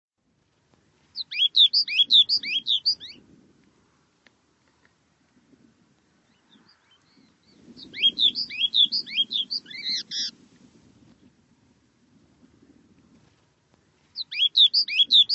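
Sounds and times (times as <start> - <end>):
bird calls in rapid chirping bursts: 1.2 - 3.2, 6.4 - 10.3, 14.2 - 15.3.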